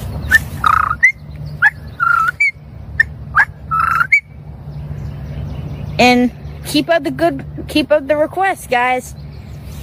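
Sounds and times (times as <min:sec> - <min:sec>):
person imitating a common poorwill's call with whistled notes: 0:00.3 - 0:02.5, 0:03.3 - 0:04.3
speech: 0:06.2 - 0:09.2.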